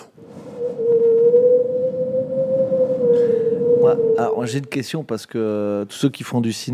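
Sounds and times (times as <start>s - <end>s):
voice imitating wind whistling through a small hole in a window: 0.0s - 4.8s
speech: 4.2s - 6.7s.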